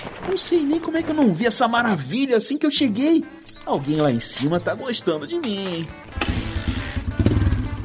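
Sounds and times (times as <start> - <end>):
speech: 0.3 - 6.4
XT600 Ténéré motorcycle engine starting and idling: 5.4 - 7.8.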